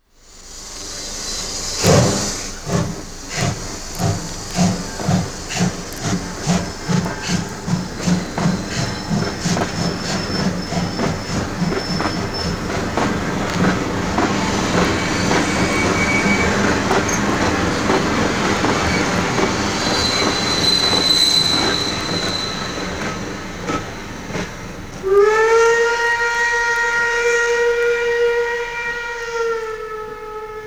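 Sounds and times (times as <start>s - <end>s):
steam locomotive whistle: 0.2s - 30.6s.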